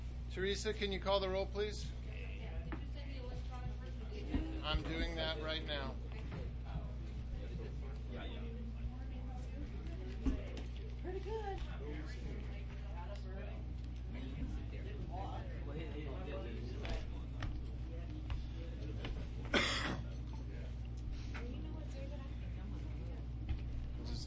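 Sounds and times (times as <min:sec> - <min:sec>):
steady low hum: 0:00.0 - 0:24.2
speech: 0:00.4 - 0:02.0, 0:04.6 - 0:06.0, 0:11.1 - 0:12.5
faint murmuring voices: 0:01.8 - 0:24.2
person coughing: 0:19.5 - 0:20.1.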